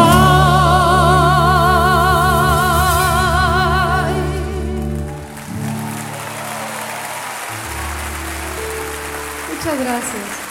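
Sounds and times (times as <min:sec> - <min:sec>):
band holding sustained low final notes: 0:00.1 - 0:10.4
live audience applause: 0:02.1 - 0:10.4.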